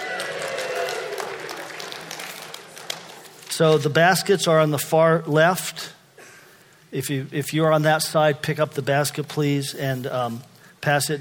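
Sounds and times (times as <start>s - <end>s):
audience cheering with shouts and whoops: 0.0s - 2.4s
audience clapping: 0.0s - 3.9s
speech: 3.6s - 5.9s, 6.9s - 11.1s.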